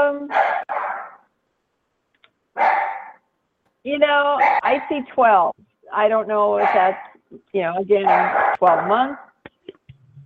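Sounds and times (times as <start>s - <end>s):
dog barking: 0.3s - 1.3s, 2.6s - 3.2s, 4.4s - 5.0s, 6.6s - 7.2s, 8.0s - 9.3s
speech: 3.8s - 9.3s.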